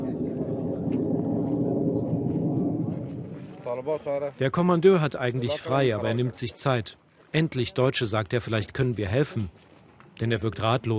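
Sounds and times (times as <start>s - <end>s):
military drones humming overhead at an army camp: 0.0s - 4.3s
speech: 3.8s - 10.9s.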